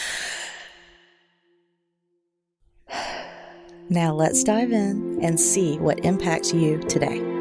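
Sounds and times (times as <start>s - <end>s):
person taking a deep breath during a guided meditation: 0.0s - 1.4s, 2.9s - 3.8s
speech: 3.9s - 7.3s.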